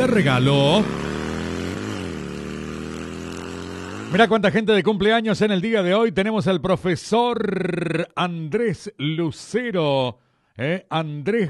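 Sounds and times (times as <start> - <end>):
brand-new zero-kilometre motorcycle engine running: 0.0 - 4.7
speech: 0.2 - 1.1, 4.1 - 11.4.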